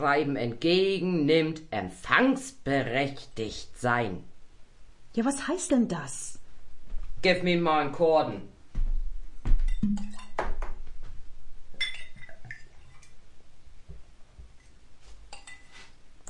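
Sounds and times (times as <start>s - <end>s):
speech: 0.0s - 4.3s, 5.2s - 6.4s, 7.2s - 8.5s, 9.8s - 10.1s
glasses clinking together in a toast: 11.8s - 12.7s.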